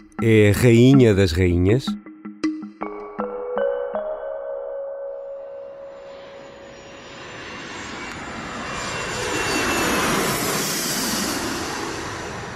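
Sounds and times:
speech: 0:00.2 - 0:02.0
chiming tones: 0:00.2 - 0:07.8
private jet engines roaring with high whine: 0:05.9 - 0:12.5.

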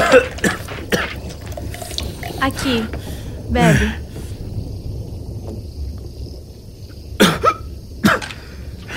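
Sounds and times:
person coughing: 0:00.0 - 0:01.4, 0:07.2 - 0:08.3
speech: 0:02.4 - 0:04.0.

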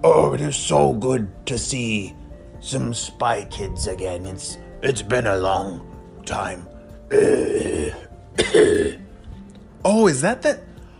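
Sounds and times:
speech: 0:00.0 - 0:09.0, 0:09.8 - 0:10.7
short groaning wavering vocal sound: 0:07.1 - 0:08.1
voice of a fire-breathing dragon throat clearing and coughing: 0:07.2 - 0:09.0.

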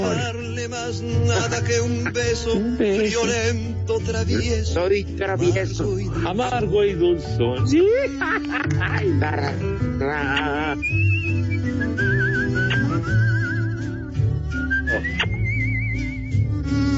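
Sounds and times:
speech: 0:00.0 - 0:12.2
laughter: 0:01.3 - 0:03.5, 0:08.0 - 0:11.2
bright wavering whistled phrases with heavy vibrato as a warning signal: 0:10.7 - 0:16.9.

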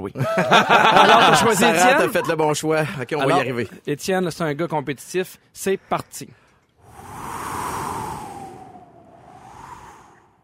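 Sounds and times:
speech: 0:00.0 - 0:06.4
laughter: 0:00.2 - 0:03.6
hollow whistling tone: 0:06.8 - 0:10.4
wind blowing: 0:06.8 - 0:10.4.

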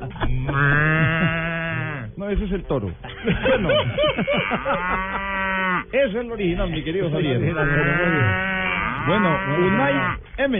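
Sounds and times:
speech: 0:00.0 - 0:00.7, 0:02.3 - 0:05.3, 0:05.9 - 0:10.5
laughter: 0:00.0 - 0:01.6, 0:03.0 - 0:05.5
cow mooing: 0:00.2 - 0:02.2, 0:04.1 - 0:06.0, 0:07.3 - 0:10.3.

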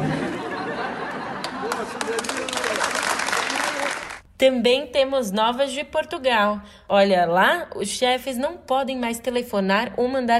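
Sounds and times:
people laughing: 0:00.0 - 0:03.0
group clapping for a 70-year-old patient leaving hospital: 0:01.0 - 0:04.3
speech: 0:04.4 - 0:10.3.

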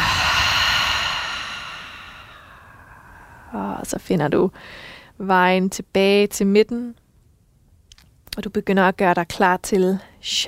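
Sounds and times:
deep nasal breathing during a yoga session: 0:00.0 - 0:03.6
speech: 0:03.5 - 0:07.0, 0:08.4 - 0:10.4.

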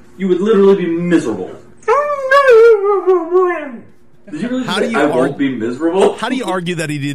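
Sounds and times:
speech: 0:00.2 - 0:01.7, 0:03.0 - 0:07.1
dog howling and yowling as if talking: 0:01.8 - 0:03.9.

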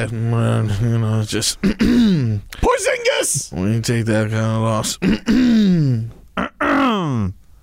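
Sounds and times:
speech: 0:00.0 - 0:06.5, 0:07.2 - 0:07.4
man clearing throat loudly: 0:01.6 - 0:02.4, 0:05.0 - 0:07.4.

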